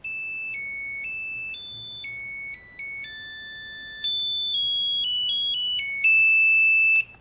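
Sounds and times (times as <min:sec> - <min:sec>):
classical melody as mobile phone ringtone: 0:00.0 - 0:07.2.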